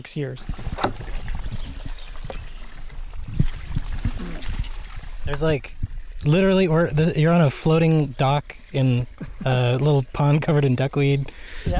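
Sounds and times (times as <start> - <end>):
speech: 0.0 - 0.7, 5.3 - 11.7
water trickling in a creek formed on a farm: 0.2 - 11.7.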